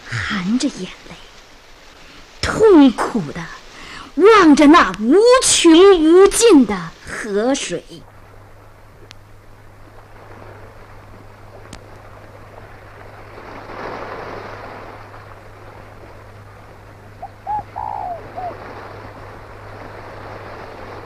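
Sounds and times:
faint low hum and hiss: 0.0s - 21.0s
speech: 0.1s - 1.3s, 2.6s - 3.6s, 4.2s - 8.1s
bird cooing: 17.2s - 18.7s.

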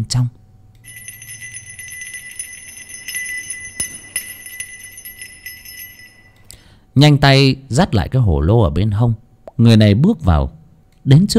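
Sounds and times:
speech: 0.0s - 1.0s, 7.0s - 11.3s
small swaying bell jingling softly: 0.8s - 6.5s.

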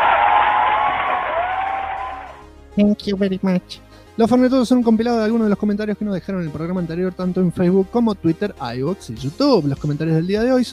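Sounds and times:
applause sound effect: 0.0s - 2.4s
speech: 2.8s - 10.7s.

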